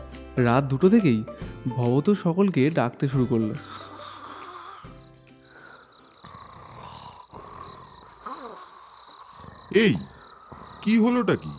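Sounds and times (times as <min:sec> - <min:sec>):
speech: 0:00.4 - 0:03.9, 0:09.8 - 0:10.1, 0:10.8 - 0:11.5
people snoring while asleep at night: 0:03.4 - 0:11.5.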